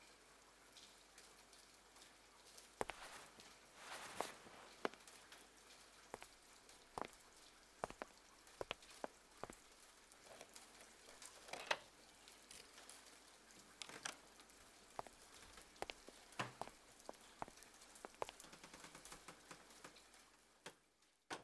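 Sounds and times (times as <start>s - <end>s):
sharp rain drips and taps: 0.0s - 20.8s
cold rain pattering outdoors: 0.0s - 21.2s.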